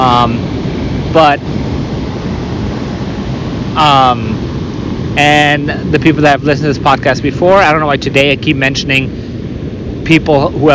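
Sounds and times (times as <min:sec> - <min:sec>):
helicopter flying low over water with rotor wash and spray: 0:00.0 - 0:10.7
speech: 0:00.2 - 0:00.6, 0:01.2 - 0:01.6, 0:03.8 - 0:04.5, 0:05.2 - 0:09.2, 0:10.0 - 0:10.7.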